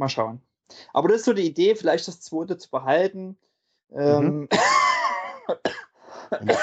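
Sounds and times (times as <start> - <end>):
speech: 0.0 - 4.8, 5.5 - 6.6
voiced hum: 4.0 - 4.4, 6.3 - 6.6
harsh coughs: 4.5 - 6.6.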